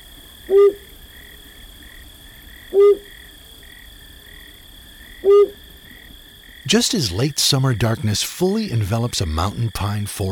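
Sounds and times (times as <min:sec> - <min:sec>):
night insects trilling: 0:00.0 - 0:10.3
speech: 0:00.5 - 0:00.8, 0:06.7 - 0:10.3
male flammulated owl hooting in a mountain pine forest: 0:00.5 - 0:00.9, 0:02.7 - 0:03.1, 0:05.2 - 0:05.6.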